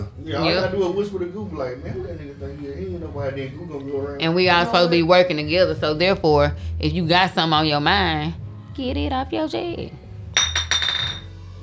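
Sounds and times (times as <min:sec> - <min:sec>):
speech: 0:00.2 - 0:10.0
glass clinking: 0:10.4 - 0:11.4.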